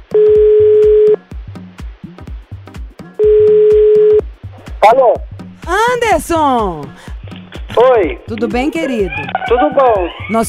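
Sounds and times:
telephone dial tone while placing a call: 0:00.1 - 0:01.2, 0:03.2 - 0:04.2
speech: 0:04.8 - 0:07.1, 0:07.8 - 0:10.4.

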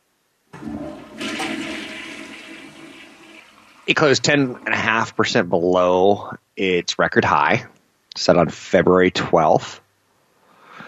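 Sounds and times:
toilet flushing: 0:00.5 - 0:05.7
speech: 0:03.9 - 0:09.8.

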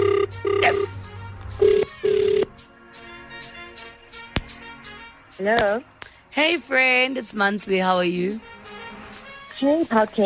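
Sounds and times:
quiet phone line hiss: 0:00.0 - 0:02.6
telephone ringback tone over a phone line: 0:00.0 - 0:02.6
speech: 0:05.4 - 0:08.5, 0:09.6 - 0:10.2.

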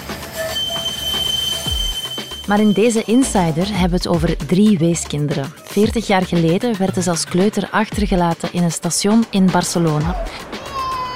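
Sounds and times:
tram wheels squealing on rails in Ghent: 0:00.0 - 0:03.3
steady rumbling roll of a tram in Ghent: 0:00.0 - 0:11.0
speech: 0:02.5 - 0:10.7.

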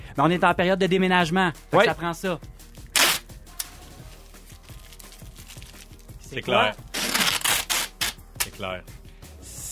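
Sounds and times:
speech: 0:00.2 - 0:02.8, 0:06.3 - 0:06.9, 0:08.6 - 0:09.0
box packing tape pulled off a roll: 0:02.9 - 0:06.0, 0:06.8 - 0:08.5.

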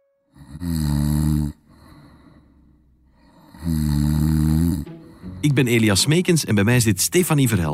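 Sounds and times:
person snoring at night with rasping texture: 0:00.3 - 0:05.5
speech: 0:05.4 - 0:07.7.

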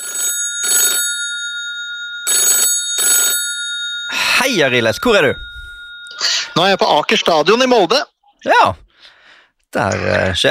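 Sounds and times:
telephone ringing tone for an outgoing call: 0:00.0 - 0:08.0
speech: 0:04.4 - 0:05.5, 0:06.2 - 0:08.8, 0:09.7 - 0:10.4.

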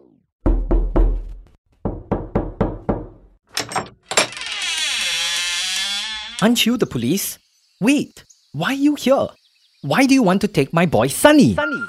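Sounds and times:
heavy knocking on a door: 0:00.4 - 0:03.2
sustained rushing creaking noise: 0:04.1 - 0:06.6
speech: 0:06.4 - 0:11.8.

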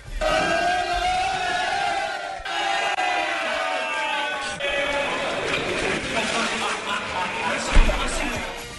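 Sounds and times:
group of players shouting and cheering at a celebration: 0:00.0 - 0:08.6
laughter: 0:04.4 - 0:08.6
splash of coach thrown into ice-cold pool water: 0:05.4 - 0:07.0.

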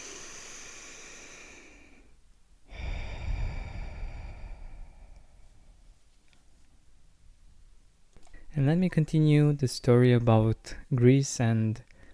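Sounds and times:
deep breath in and out: 0:00.0 - 0:06.0, 0:11.9 - 0:12.1
speech: 0:08.5 - 0:11.9.

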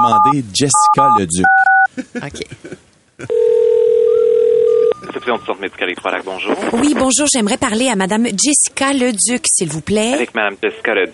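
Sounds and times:
voice speaking over the phone line: 0:00.0 - 0:01.3, 0:05.0 - 0:06.2
ringback tone of an outgoing phone call to a medical centre: 0:00.0 - 0:01.9, 0:03.3 - 0:05.4
speech: 0:00.0 - 0:03.7, 0:05.2 - 0:11.1.

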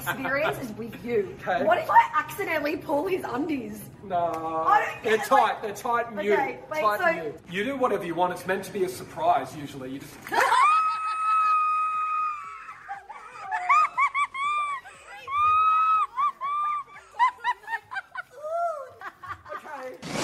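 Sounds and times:
speech: 0:00.0 - 0:10.6
laughter: 0:10.3 - 0:19.9
woman screaming and shrieking with laugh-like yelps: 0:10.4 - 0:16.9.

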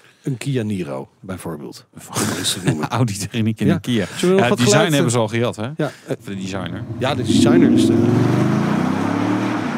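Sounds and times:
speech: 0:00.2 - 0:08.6
laughter: 0:02.1 - 0:05.2
eight-cylinder V8 car engine running: 0:06.2 - 0:09.7.

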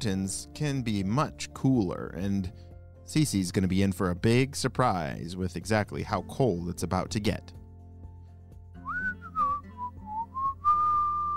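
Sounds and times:
speech: 0:00.0 - 0:07.6
person whistling a short wandering tune: 0:08.8 - 0:11.3.

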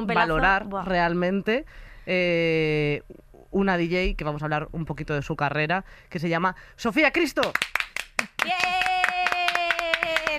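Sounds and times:
speech: 0:00.0 - 0:07.8, 0:08.4 - 0:09.0
two people clapping: 0:07.4 - 0:10.3.

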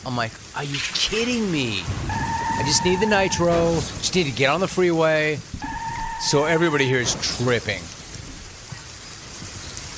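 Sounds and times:
speech: 0:00.0 - 0:05.6, 0:06.2 - 0:08.0
steady rain falling: 0:00.0 - 0:09.9.

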